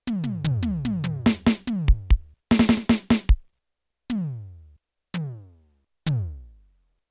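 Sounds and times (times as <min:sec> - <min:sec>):
Yamaha TX16W electronic drums: 0:00.0 - 0:03.4, 0:04.1 - 0:05.5.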